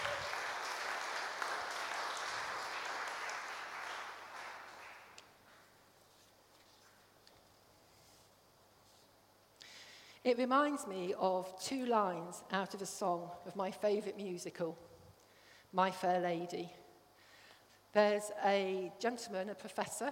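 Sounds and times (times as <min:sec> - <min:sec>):
audience applause: 0:00.0 - 0:05.2
speech: 0:10.3 - 0:14.9, 0:15.7 - 0:16.8, 0:18.0 - 0:20.1.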